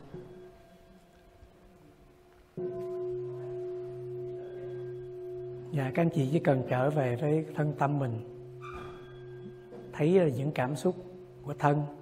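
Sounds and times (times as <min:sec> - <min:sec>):
low meditation bell struck: 0:00.0 - 0:12.0
speech: 0:05.7 - 0:08.3, 0:10.0 - 0:12.0.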